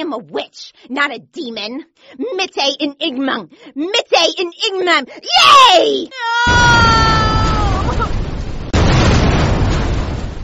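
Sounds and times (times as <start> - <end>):
speech: 0.0 - 8.1
flames bursting out as a body catches fire in a cave of ice: 6.5 - 10.4.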